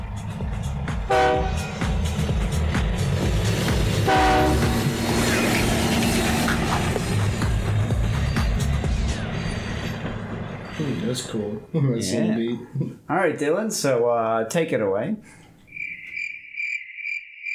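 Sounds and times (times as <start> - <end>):
low roar of train wheels: 0.0 - 11.4
train rumbling past: 0.0 - 11.7
train horn blasts: 1.1 - 1.9, 3.9 - 5.2
speech: 11.3 - 15.4.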